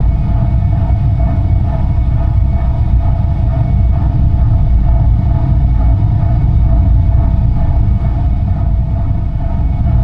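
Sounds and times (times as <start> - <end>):
spaceship ambience: 0.0 - 10.0.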